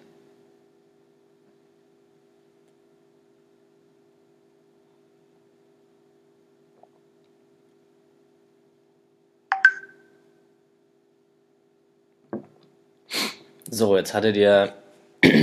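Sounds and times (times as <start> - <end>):
phone messaging app notification chime: 9.5 - 10.0
faint breathy sniffs: 13.1 - 13.5
speech: 13.7 - 15.4.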